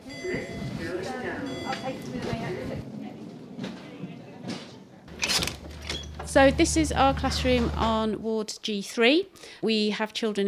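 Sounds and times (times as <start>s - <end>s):
door sliding open: 2.1s - 8.0s
speech: 6.3s - 10.4s.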